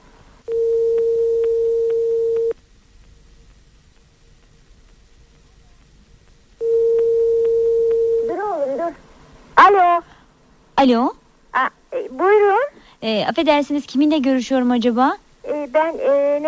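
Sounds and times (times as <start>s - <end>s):
telephone ringback tone on the line after a number is dialled: 0.5s - 2.5s, 6.6s - 8.4s
speech: 10.8s - 11.7s, 12.3s - 16.4s.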